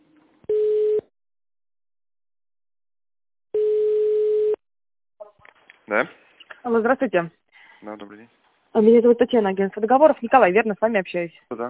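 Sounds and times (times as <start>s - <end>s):
telephone line electronic beeps while a call is transferred: 0.5s - 1.0s, 3.6s - 4.6s
speech: 5.9s - 11.6s.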